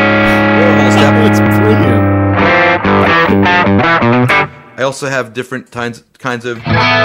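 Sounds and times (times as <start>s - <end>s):
heavily distorted electric modeling guitar playing chords and notes: 0.0s - 4.8s, 6.6s - 7.0s
speech: 4.9s - 7.0s.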